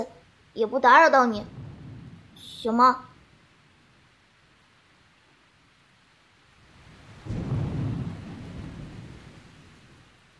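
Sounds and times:
speech: 0.0s - 1.6s, 2.4s - 3.1s
steady hiss of rain: 0.1s - 10.3s
deep rumble of thunder during a rainstorm: 1.2s - 3.8s, 6.6s - 10.2s.

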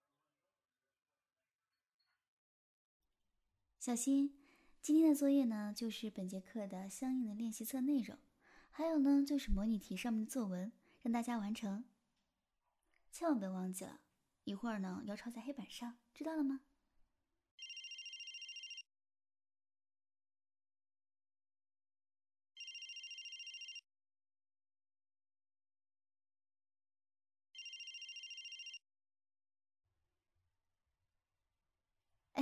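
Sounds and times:
speech: 3.8s - 11.9s, 13.1s - 16.7s
telephone ringing with a bright electronic trill: 17.6s - 18.8s, 22.6s - 23.8s, 27.6s - 28.8s.

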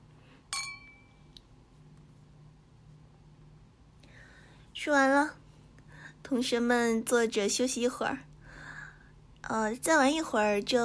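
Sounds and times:
quiet hum: 0.0s - 10.8s
glasses clinking in a toast: 0.5s - 1.1s
speech: 4.8s - 5.4s, 6.3s - 8.3s, 9.4s - 10.8s.

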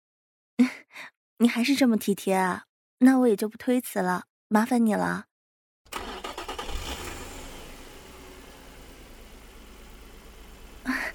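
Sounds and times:
speech: 1.4s - 5.3s
sports car engine starting and idling: 5.9s - 11.1s.

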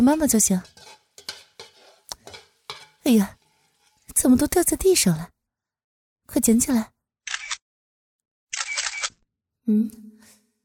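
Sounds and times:
speech: 0.0s - 1.0s, 3.1s - 3.4s, 4.2s - 5.4s, 6.3s - 6.9s, 9.7s - 10.1s
mobile phone camera shutter taking a photo: 8.5s - 9.2s.

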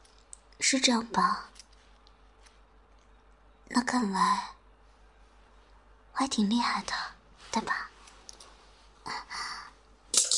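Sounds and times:
speech: 0.7s - 1.5s, 3.7s - 4.6s, 6.2s - 7.9s
soft rustling and shuffling: 1.2s - 3.4s, 4.8s - 9.1s
pen dropping onto a hard surface: 10.2s - 10.3s.

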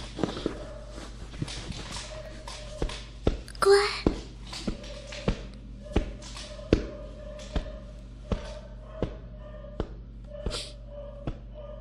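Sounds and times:
dog paws tapping on a hard floor: 0.0s - 10.4s
speech: 3.6s - 4.0s.

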